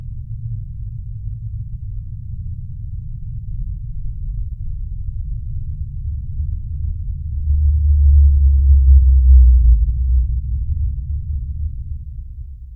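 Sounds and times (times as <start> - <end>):
steady low rumble of ocean noise: 0.0 - 12.7
blue whale D-call low moan: 6.9 - 12.6.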